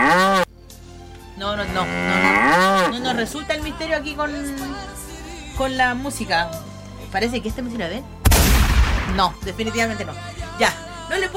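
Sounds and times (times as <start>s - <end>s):
cow mooing in a loud drawn-out low call: 0.0s - 0.5s, 1.4s - 3.4s, 4.3s - 5.0s
speech: 1.4s - 2.3s, 3.0s - 5.0s, 5.6s - 8.2s, 9.1s - 11.3s.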